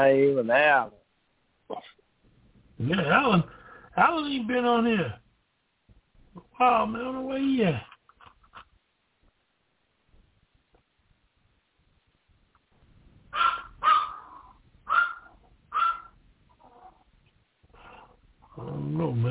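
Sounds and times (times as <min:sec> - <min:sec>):
speech: 0:00.0 - 0:01.0, 0:01.7 - 0:01.9, 0:02.8 - 0:05.2, 0:06.6 - 0:07.9, 0:18.6 - 0:19.3
small mixed-breed dog barking: 0:13.4 - 0:17.0.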